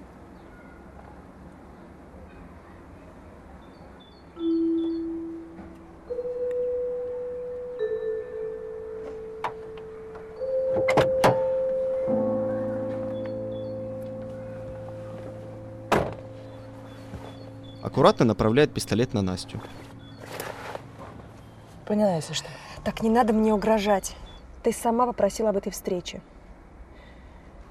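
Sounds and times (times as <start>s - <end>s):
steady low tone: 4.4s - 22.0s
dull thunks and knocks of a car door: 10.6s - 11.5s, 15.9s - 16.4s
firmer car door closing thump: 15.9s - 16.2s
speech: 18.0s - 20.0s, 21.9s - 26.3s.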